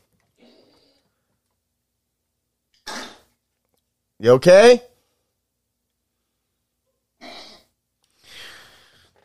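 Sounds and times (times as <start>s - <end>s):
pug with collapsed trachea coughing: 2.8s - 3.3s
speech: 4.2s - 4.9s.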